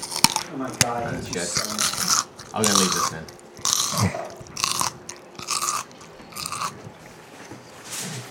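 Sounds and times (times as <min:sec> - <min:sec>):
crisp food being chewed: 0:00.0 - 0:08.0
speech: 0:00.5 - 0:04.4.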